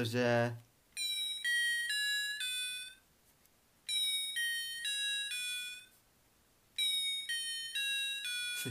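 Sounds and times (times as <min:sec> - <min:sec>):
speech: 0:00.0 - 0:00.7
cheap electronic keyboard playing a tinny melody: 0:01.0 - 0:03.0, 0:03.9 - 0:06.0, 0:06.8 - 0:08.7.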